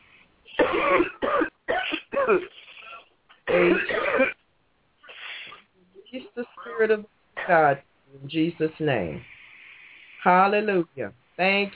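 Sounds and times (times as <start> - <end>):
person coughing deep and throaty: 0.6 - 4.4
speech: 0.8 - 1.3, 2.3 - 2.6, 6.8 - 9.3, 10.2 - 11.7.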